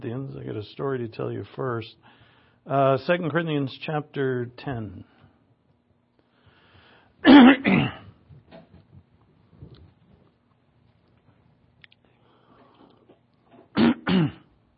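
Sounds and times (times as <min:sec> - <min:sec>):
speech: 0:00.0 - 0:05.1, 0:07.2 - 0:07.8
man clearing his throat to bring up phlegm: 0:07.2 - 0:08.2, 0:13.7 - 0:14.5.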